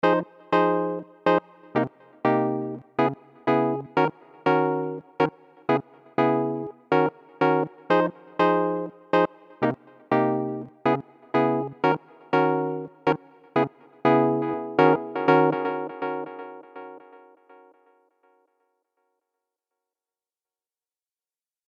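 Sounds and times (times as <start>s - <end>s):
Juno 106 synthesizer guitar sound: 0.1s - 17.3s.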